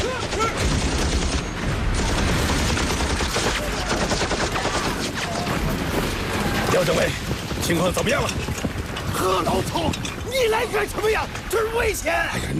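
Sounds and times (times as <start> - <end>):
machine gun fire in a battle at a road junction: 0.0 - 6.1
speech: 6.8 - 12.5.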